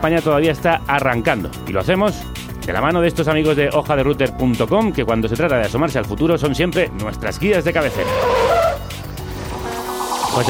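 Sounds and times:
speech: 0.0s - 8.5s
car tires squealing in a sliding skid: 7.7s - 10.4s.

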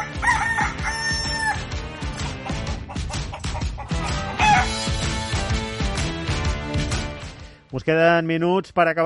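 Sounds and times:
rooster crowing: 0.0s - 1.6s, 4.4s - 4.8s
busy rhythmic musical backing: 0.0s - 7.6s
speech: 7.8s - 9.0s.

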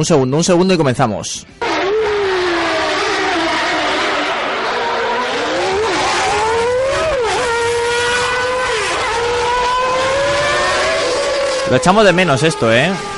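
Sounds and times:
speech: 0.0s - 1.6s, 11.7s - 13.1s
Formula 1 race car engine revving through gear changes: 1.6s - 13.1s.

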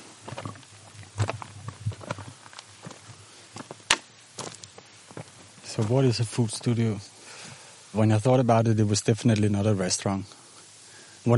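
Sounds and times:
footsteps climbing over stones: 0.0s - 7.7s
speech: 5.8s - 7.1s, 7.9s - 10.4s.

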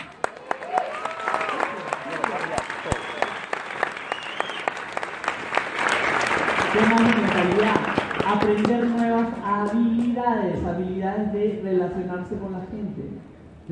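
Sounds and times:
crowd applauding: 0.0s - 9.4s
speech: 8.4s - 13.3s.

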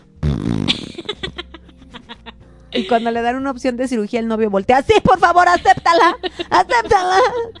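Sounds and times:
voice imitating a fart with lip raspberry: 0.2s - 1.1s
laughter: 0.7s - 3.2s, 5.5s - 7.5s
speech: 2.8s - 7.5s.

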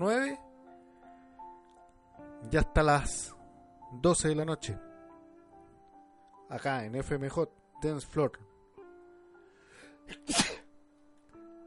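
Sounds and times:
speech: 0.0s - 0.4s, 2.5s - 4.9s, 6.5s - 8.5s
person sneezing: 10.1s - 10.7s.

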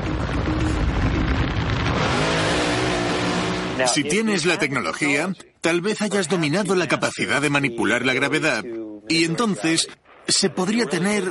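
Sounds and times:
car engine revving and accelerating: 0.0s - 3.9s
speech: 3.8s - 11.2s.

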